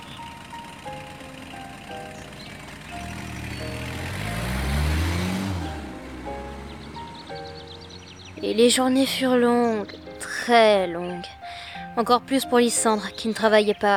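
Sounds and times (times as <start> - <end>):
car engine starting and driving away: 0.0 - 8.4
speech: 8.4 - 11.4, 12.0 - 13.9.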